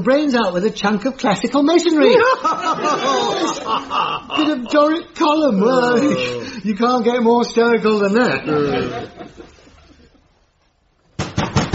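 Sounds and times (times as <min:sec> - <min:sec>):
speech: 0:00.0 - 0:09.3
laughter: 0:02.0 - 0:05.0, 0:05.6 - 0:06.6, 0:08.3 - 0:10.3
heavy banging on a wooden door: 0:11.2 - 0:11.7.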